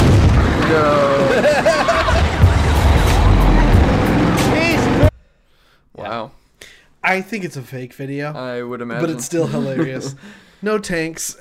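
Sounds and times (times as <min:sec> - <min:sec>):
booming crunches: 0:00.0 - 0:04.0
car engine rumble from a played video clip: 0:00.0 - 0:05.1
crowd commotion with excited voices: 0:00.0 - 0:05.1
speech: 0:00.7 - 0:01.5, 0:07.1 - 0:11.4
laughter: 0:00.7 - 0:05.0, 0:09.0 - 0:10.3.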